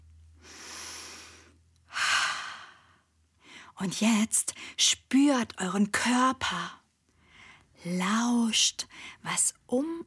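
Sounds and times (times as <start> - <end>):
slow deep breath in and out: 0.4 - 3.7
speech: 3.8 - 6.8, 7.8 - 10.0.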